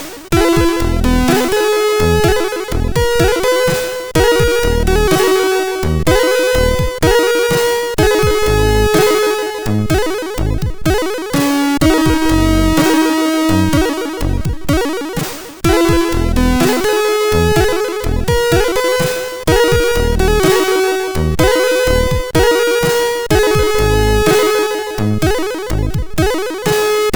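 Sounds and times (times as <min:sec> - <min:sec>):
MOS6581 R2 sound chip synthesizer tone: 0:00.3 - 0:27.1.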